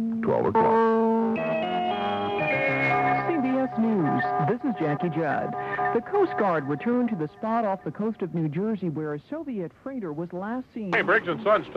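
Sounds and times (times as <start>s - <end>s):
buzzy electronic radio time-signal tones: 0.1s - 9.0s
bright musical jingle: 0.3s - 7.7s
speech: 4.7s - 11.7s.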